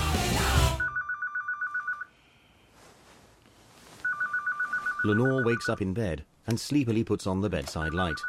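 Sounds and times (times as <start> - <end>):
mobile phone ringtone of rapid electronic beeps inside a handbag: 0.8 - 2.1, 4.0 - 5.8, 7.8 - 8.2
rustling: 2.6 - 5.2
speech: 5.0 - 8.2.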